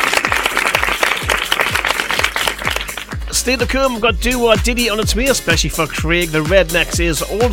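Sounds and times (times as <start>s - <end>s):
crowd applauding: 0.0s - 3.4s
speech: 3.4s - 7.5s.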